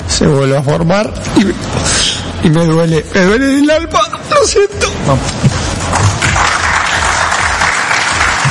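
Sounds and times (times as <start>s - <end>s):
speech: 0.2s - 6.2s
applause from journalists at a press conference: 5.9s - 8.4s.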